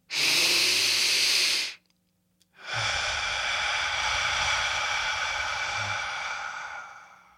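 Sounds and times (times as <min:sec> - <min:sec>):
deep breath drawn in through the nose: 0:00.1 - 0:01.8, 0:02.6 - 0:07.3.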